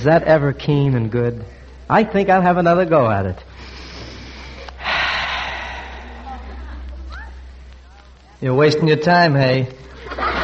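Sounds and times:
speech: 0.0 - 3.5, 8.4 - 10.4
long exaggerated inhale: 3.6 - 6.9
laughter: 9.9 - 10.4.

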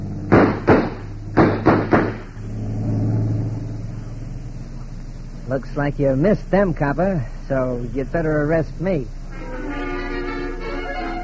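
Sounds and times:
boat engine revving as the boat pulls away: 0.0 - 0.4, 2.1 - 11.2
sharp loud bangs: 0.2 - 3.7
speech: 5.5 - 9.2.

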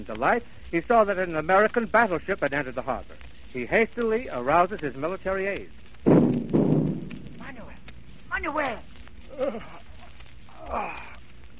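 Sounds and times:
speech: 0.0 - 5.8, 8.3 - 9.8, 10.7 - 11.1
steady hum: 0.0 - 11.5
deep cannon boom firing a salute: 6.0 - 8.2.

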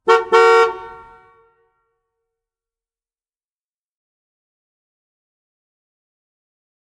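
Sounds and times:
horn honk: 0.0 - 1.9.

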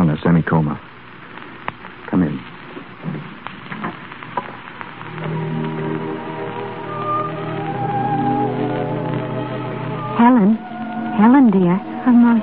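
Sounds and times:
speech: 0.4 - 0.9
heavy rain pouring: 2.0 - 12.4
low sustained tone: 5.1 - 12.4.

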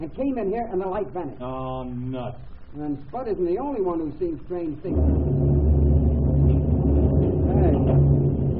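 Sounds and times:
speech: 0.0 - 5.5
thunder rumbling heard from inside a cave: 4.9 - 8.5.

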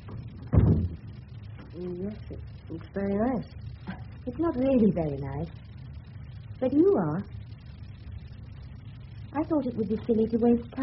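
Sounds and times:
bedroom door shutting with a dull low thump: 0.1 - 1.0
speech: 1.8 - 5.6, 6.6 - 7.4, 9.3 - 10.8.

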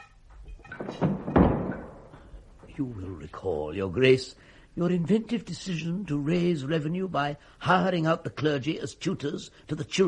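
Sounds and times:
door being pushed shut with dull thunks and a firmer thud: 0.7 - 2.2
speech: 2.8 - 10.0.

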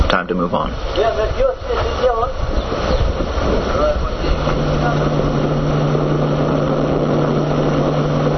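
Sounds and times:
faint voice-like sounds: 0.0 - 8.3
wind rushing: 0.7 - 8.3
ferry engine droning while travelling upriver: 3.0 - 8.3.

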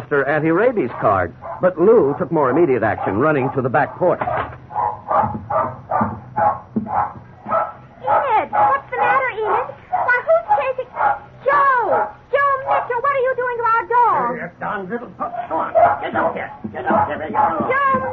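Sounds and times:
speech: 0.0 - 4.6
young terrier barking wildly: 0.6 - 14.3, 15.2 - 18.1
young terrier whining yelps: 2.5 - 13.2, 15.4 - 18.1.

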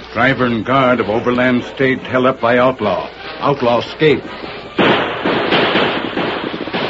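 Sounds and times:
speech: 0.2 - 5.0
rapid gunfire aimed at outlaws fleeing on horseback: 4.8 - 6.8.

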